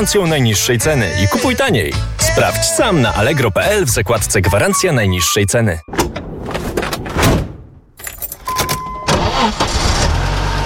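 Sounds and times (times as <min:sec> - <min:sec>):
speech: 0:00.0 - 0:06.0
keys jingling: 0:08.0 - 0:09.0
car engine cranking, catching and idling: 0:08.0 - 0:10.6.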